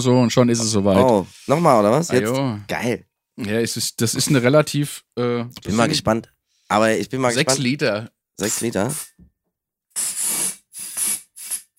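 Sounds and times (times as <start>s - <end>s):
speech: 0.0s - 9.2s
gas hissing from a bottle into a balloon: 10.0s - 11.7s.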